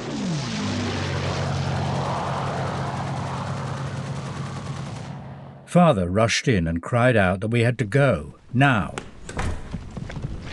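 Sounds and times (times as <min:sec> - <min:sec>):
low-flying German propeller warplanes roaring overhead: 0:00.0 - 0:05.8
speech: 0:05.7 - 0:09.5.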